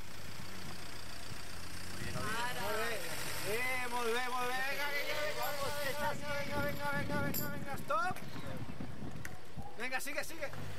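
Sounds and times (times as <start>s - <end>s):
car engine idling: 0.0s - 6.1s
speech: 3.5s - 8.6s, 9.8s - 10.7s.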